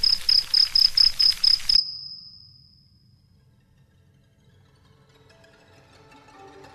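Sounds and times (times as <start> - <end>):
dense swarm of crickets chirping in rapid pulses: 0.0 - 3.2.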